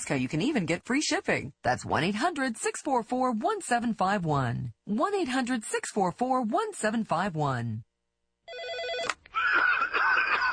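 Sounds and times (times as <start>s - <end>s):
speech: 0.1s - 7.9s, 8.5s - 10.0s
old PBX office desk phone ringing: 8.5s - 9.2s
laughter: 9.4s - 10.5s.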